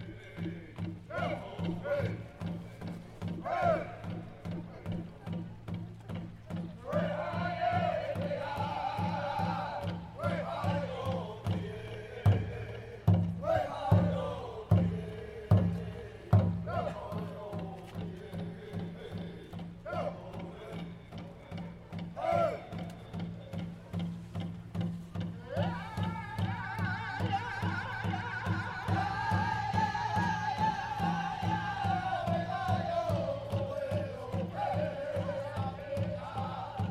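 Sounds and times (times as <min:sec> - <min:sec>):
crowd of marchers chanting, singing and shouting in Canada: 0:00.0 - 0:36.9
steady rhythmic drumming of marchers in Canada: 0:00.0 - 0:36.9.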